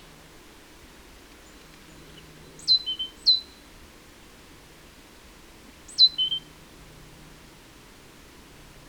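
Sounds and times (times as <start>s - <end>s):
great tit calls, Parus major: 1.5s - 3.6s, 5.9s - 6.5s.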